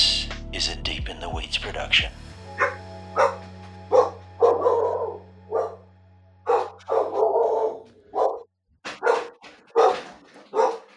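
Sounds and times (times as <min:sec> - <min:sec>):
speech: 0:00.6 - 0:02.3
dog barking indoors at someone at the door: 0:02.6 - 0:05.8, 0:06.4 - 0:10.9.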